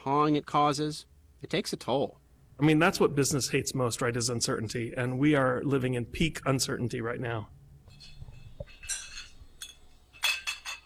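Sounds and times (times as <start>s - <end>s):
speech: 0.0s - 7.6s
whirring steel and glass conveyor of a bottling machine: 0.0s - 10.7s
glass bottles clinking on a bottling machine conveyor at a distillery: 7.9s - 10.8s.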